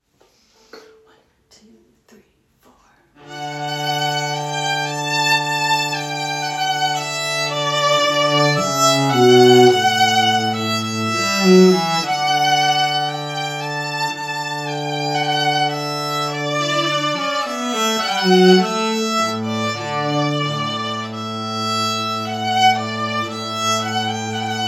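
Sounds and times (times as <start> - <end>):
cello: 3.2 - 24.6
violin: 3.2 - 24.6.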